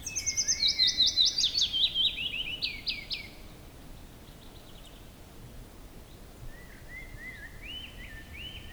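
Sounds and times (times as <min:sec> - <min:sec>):
willow warbler song: 0:00.0 - 0:02.7.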